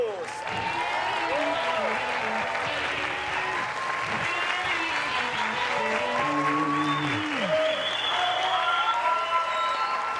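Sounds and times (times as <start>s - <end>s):
voices: 0.0s - 7.6s
audience applause for a magician's act: 0.0s - 10.1s.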